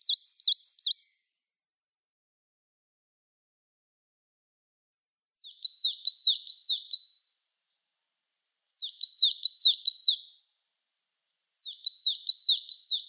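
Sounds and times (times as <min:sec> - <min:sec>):
Coal Tit singing high-pitched repeated double notes: 0:00.0 - 0:01.0, 0:05.4 - 0:07.1, 0:08.7 - 0:10.3, 0:11.6 - 0:13.0.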